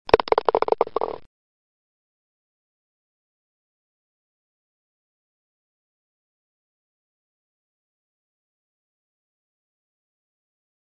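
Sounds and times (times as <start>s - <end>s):
golf ball falling into a golf hole: 0.1s - 1.2s.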